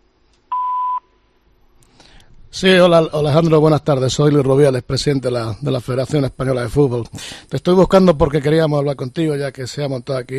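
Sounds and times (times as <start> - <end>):
voicemail beep: 0.5 - 1.1
speech: 2.6 - 10.3.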